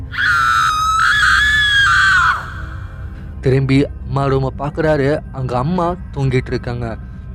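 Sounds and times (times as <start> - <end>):
person screaming: 0.1 - 3.0
speech: 3.4 - 7.1.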